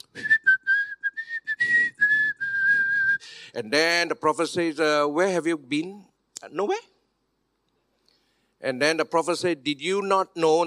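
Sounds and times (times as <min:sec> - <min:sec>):
person whistling a melody by mouth: 0:00.0 - 0:03.3
speech: 0:03.6 - 0:06.9, 0:08.6 - 0:10.6.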